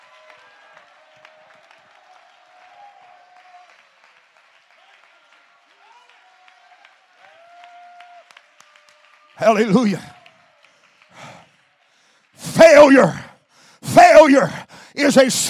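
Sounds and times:
audience clapping: 0.0 - 13.3
speech: 9.4 - 10.1, 12.9 - 13.2, 14.3 - 15.4
scattered voices shouting and calling out: 12.4 - 15.4.

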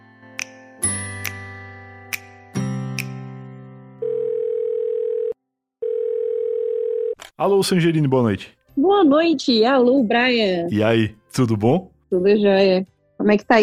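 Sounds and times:
telephone dial tone: 4.0 - 7.2
speech: 7.4 - 13.6.

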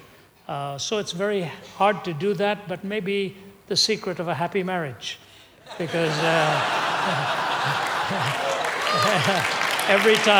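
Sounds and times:
speech: 0.5 - 10.3
live audience applauding: 5.7 - 10.3
man chuckling and laughing: 5.7 - 10.3.

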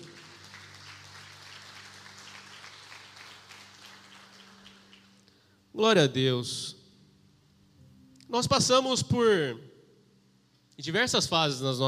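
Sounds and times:
crowd applauding: 0.0 - 5.4
speech: 5.8 - 6.8, 8.3 - 9.7, 10.8 - 11.8.

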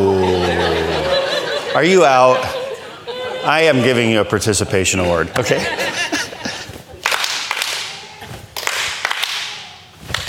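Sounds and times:
laughter: 0.0 - 8.4
faint crowd noise: 0.0 - 10.1
speech: 1.8 - 2.5, 3.4 - 6.2
loud sharp hand claps with tail: 5.4 - 10.2.

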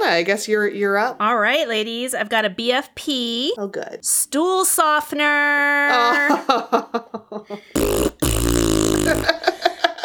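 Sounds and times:
speech: 0.1 - 9.5
person blowing buzzy raspberry fart sounds with the mouth: 7.8 - 9.4.

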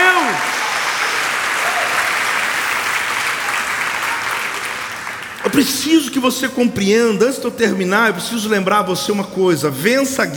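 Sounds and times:
large audience applauding: 0.0 - 5.9
speech: 5.6 - 10.3.

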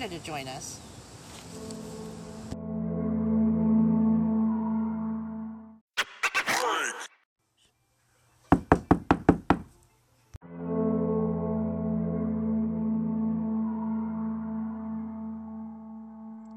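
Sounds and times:
speech: 0.0 - 0.9, 1.5 - 1.9
steady droning tone: 1.4 - 5.8, 10.4 - 16.5
sharp knocks on a door: 8.5 - 9.7.

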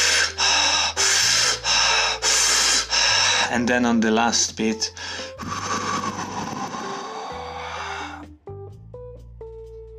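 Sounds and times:
deep fast inhalations during a breathing exercise: 0.0 - 3.5, 5.0 - 8.3
speech: 3.5 - 5.6.

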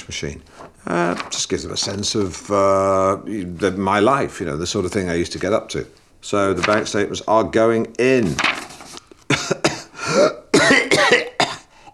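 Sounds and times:
speech: 0.1 - 8.6
person coughing after inhaling a dead fly's leg: 9.3 - 11.7.

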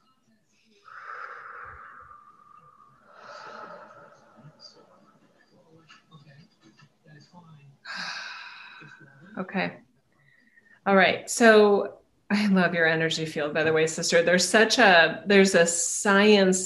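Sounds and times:
deep breaths in a guided breathing exercise: 0.6 - 5.4, 7.9 - 9.4, 10.1 - 10.9
speech: 9.4 - 9.8, 10.9 - 16.6.

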